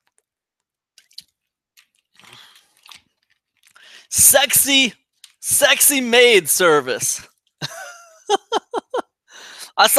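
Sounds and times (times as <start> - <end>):
person drinking a glass of water: 1.0 - 3.8
speech: 4.1 - 7.3, 9.8 - 9.9
laughter: 7.6 - 9.0.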